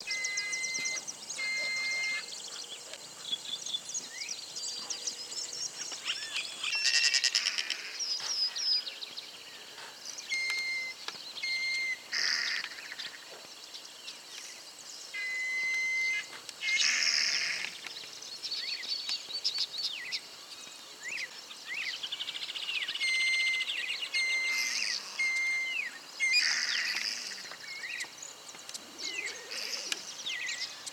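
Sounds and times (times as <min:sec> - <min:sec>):
birds: 0:00.0 - 0:30.9
whistle: 0:00.1 - 0:02.2, 0:10.4 - 0:12.0, 0:15.2 - 0:16.3, 0:23.1 - 0:25.9.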